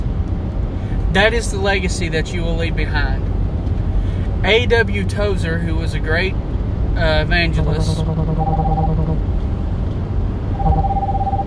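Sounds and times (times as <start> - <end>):
constant low rumbling background: 0.0 - 11.4
speech: 1.2 - 3.3, 4.4 - 9.1
phone ringing in electronic bursts: 8.4 - 9.2, 10.6 - 11.4.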